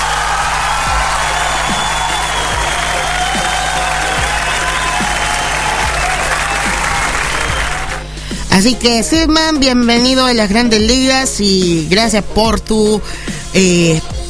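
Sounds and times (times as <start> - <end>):
applause sound effect: 0.0 - 8.2
speech: 8.6 - 14.1.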